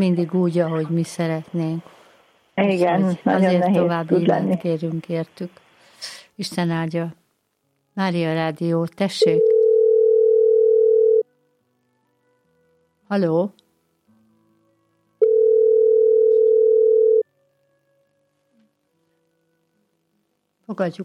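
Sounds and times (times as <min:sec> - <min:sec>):
speech: 0:00.0 - 0:02.0, 0:02.6 - 0:07.2, 0:08.0 - 0:09.5, 0:13.1 - 0:13.6, 0:20.7 - 0:21.0
steady telephone line tone on a radio call-in line: 0:09.2 - 0:11.3, 0:15.2 - 0:17.2.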